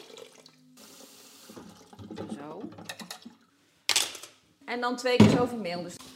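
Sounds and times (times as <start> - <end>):
warm water being poured into a bowl: 0.0 - 2.2
speech: 4.7 - 6.0.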